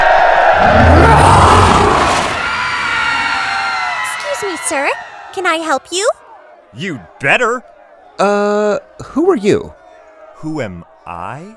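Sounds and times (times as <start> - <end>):
crowd of adults shouting all at once: 0.0 - 11.5
speech: 4.7 - 9.8, 10.4 - 11.5.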